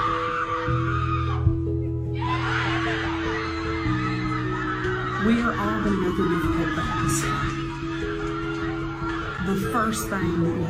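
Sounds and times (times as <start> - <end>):
basketball team screaming and cheering in celebration: 0.0 - 10.6
speech: 5.2 - 7.6, 9.5 - 10.6.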